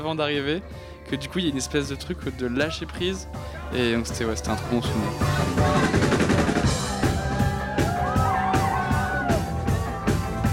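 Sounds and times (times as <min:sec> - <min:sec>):
speech: 0:00.0 - 0:06.1
steady pounding beats and music: 0:04.4 - 0:10.5
crowd roaring and whooping at a release party: 0:05.3 - 0:10.5.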